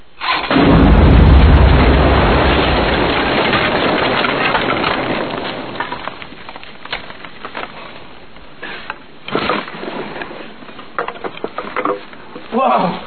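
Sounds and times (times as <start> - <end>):
explosion blasting open a sealed side tunnel: 0.5 - 6.5
debris patter: 0.5 - 13.0.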